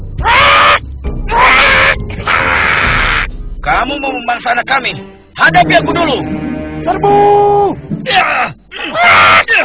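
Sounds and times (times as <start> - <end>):
crow cawing: 0.2 - 3.3
speech: 3.8 - 9.6.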